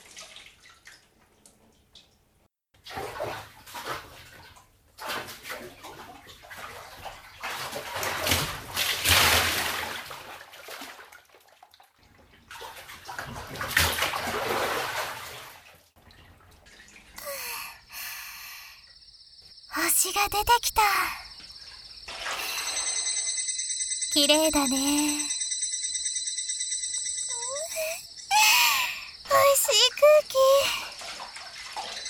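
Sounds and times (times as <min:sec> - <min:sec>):
hot bath water splashing and sloshing as someone soaks: 0:00.0 - 0:01.2, 0:02.8 - 0:18.7, 0:21.6 - 0:23.2, 0:27.8 - 0:32.0
speech: 0:20.2 - 0:21.2, 0:24.2 - 0:25.3.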